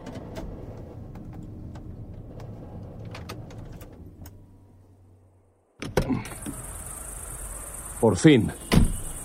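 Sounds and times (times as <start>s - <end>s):
steady insect-like hiss: 6.1s - 9.2s
car engine rumbling and idling at a house in the mountains: 6.2s - 9.2s
speech: 8.0s - 8.7s
car door thump: 8.6s - 9.1s.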